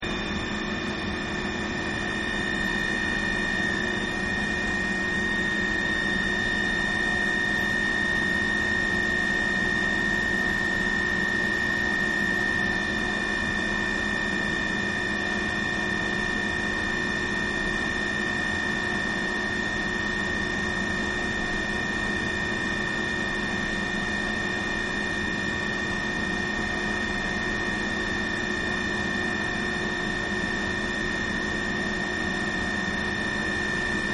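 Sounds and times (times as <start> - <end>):
underground garage generator hum: 0.0 - 34.1.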